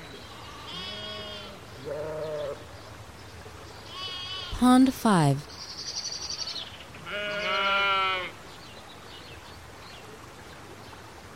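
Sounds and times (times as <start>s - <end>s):
sheep bleating in a meadow: 0.6s - 2.5s, 7.0s - 8.3s
speech: 4.6s - 5.5s.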